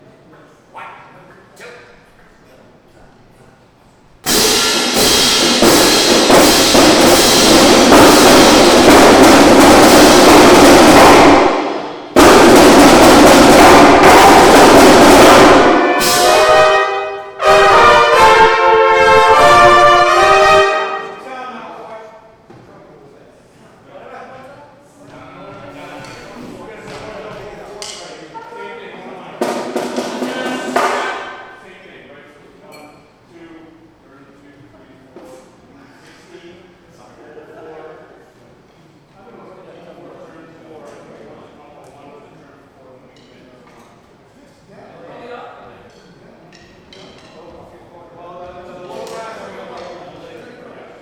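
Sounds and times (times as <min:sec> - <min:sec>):
celebration drum intro: 0:04.2 - 0:21.2, 0:29.4 - 0:31.6
brass playing: 0:04.3 - 0:21.3.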